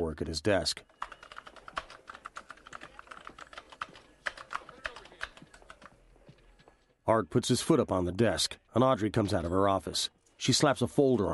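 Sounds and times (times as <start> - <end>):
speech: 0.1 - 1.2, 7.1 - 11.3
computer keyboard typing in a police station office: 0.9 - 6.0.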